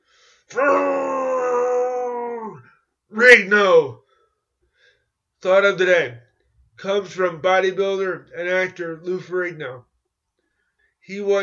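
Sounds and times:
faint breathy sound: 0.0 - 0.5, 4.0 - 5.2, 10.4 - 11.0
human voice growling like a monster: 0.5 - 2.7
speech: 3.2 - 4.0, 5.4 - 6.2, 6.8 - 9.9, 11.0 - 11.4.

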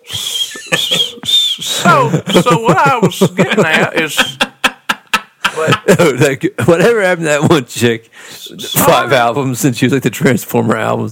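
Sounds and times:
person whistling: 0.0 - 2.0
laughter: 0.1 - 7.0
speech: 2.0 - 4.5, 5.6 - 11.1.

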